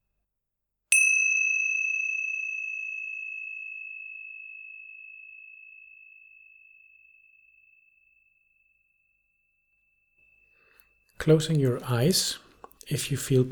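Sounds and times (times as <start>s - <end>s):
meditation bell ringing: 0.9s - 8.8s
speech: 11.2s - 13.5s.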